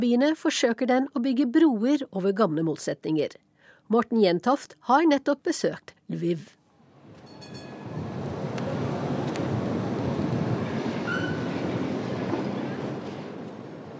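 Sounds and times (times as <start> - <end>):
speech: 0.0 - 6.6
worn old tram rumbling past on a street in Lviv Ukraine: 6.9 - 13.9
tram wheels squealing and whining on rails: 7.2 - 13.9.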